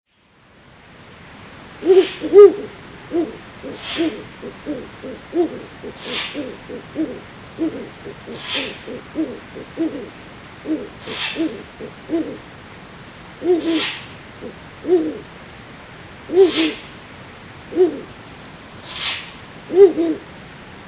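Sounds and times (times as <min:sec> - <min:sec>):
owl calling: 0:01.8 - 0:12.4, 0:13.4 - 0:15.3, 0:16.3 - 0:16.9, 0:17.7 - 0:18.1, 0:18.9 - 0:20.2.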